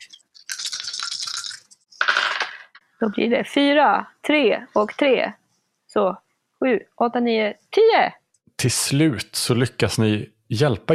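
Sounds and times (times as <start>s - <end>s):
dice rattling while being shaken: 0.5s - 2.8s
speech: 3.0s - 5.4s, 6.0s - 10.9s.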